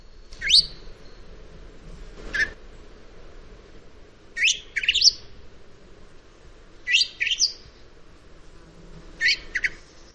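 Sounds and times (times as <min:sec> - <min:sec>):
faint outdoor hiss: 0:00.0 - 0:10.1
Eurasian blackbird soft whistling call: 0:00.2 - 0:01.2, 0:04.4 - 0:05.2, 0:06.9 - 0:07.6, 0:09.2 - 0:09.9.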